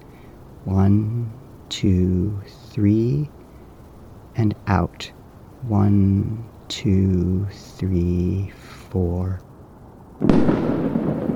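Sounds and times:
firecrackers crackling rumble outside: 0.0 - 11.3
speech: 0.6 - 3.4, 4.4 - 9.5, 10.2 - 11.0
firecracker bang outside: 10.2 - 11.3.

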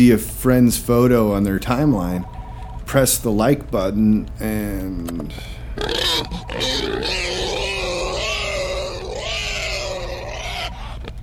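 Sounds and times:
speech: 0.0 - 7.2
pig squealing with grunting undertones: 5.8 - 11.2.

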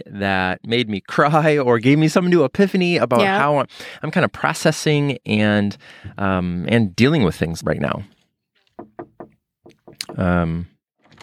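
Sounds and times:
speech: 0.0 - 8.2, 10.0 - 11.2
voice imitating knocks on a door: 8.7 - 10.4.

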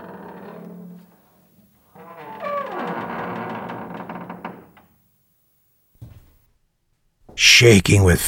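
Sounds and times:
door slowly creaking open: 0.0 - 5.0
speech: 7.4 - 8.2.

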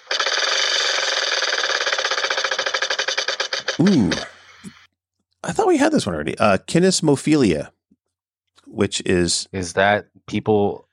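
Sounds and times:
wheel being spun with rapid clicks: 0.0 - 4.2
speech: 3.8 - 4.8, 5.4 - 7.8, 8.7 - 10.9.

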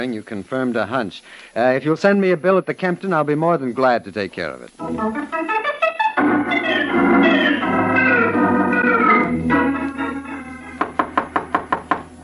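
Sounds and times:
speech: 0.0 - 5.5
orchestral music: 4.8 - 11.0
loud sharp knocks on a door: 10.8 - 12.1.

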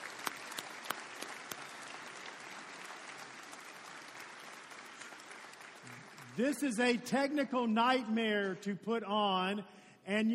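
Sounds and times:
audience applause: 0.0 - 6.7
speech: 6.4 - 10.3.

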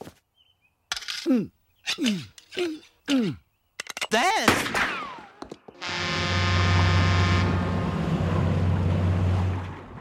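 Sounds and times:
speech: 1.2 - 3.4, 4.1 - 5.0
sinking boat engine droning: 5.8 - 9.9.

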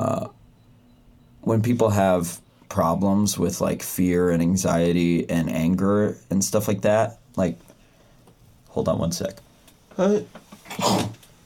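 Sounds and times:
speech: 1.5 - 7.7, 8.7 - 11.1
sneeze: 10.7 - 11.2.

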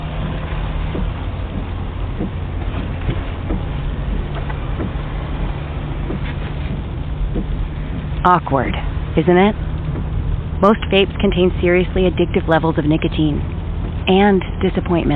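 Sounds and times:
faint knocks: 0.0 - 8.3
car engine and road rumble on a ride home: 0.0 - 15.1
speech: 8.2 - 9.7, 10.6 - 13.5, 14.1 - 15.1.

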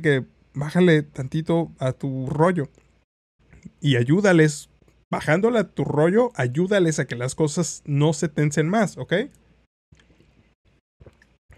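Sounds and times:
speech: 0.0 - 2.8, 3.8 - 9.4
person gulping water: 11.0 - 11.5.

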